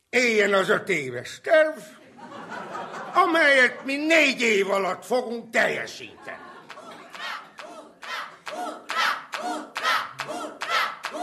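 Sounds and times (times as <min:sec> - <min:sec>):
speech: 0:00.1 - 0:06.4
laughter: 0:02.0 - 0:04.7, 0:05.8 - 0:11.2
group clapping in unison: 0:06.2 - 0:11.2.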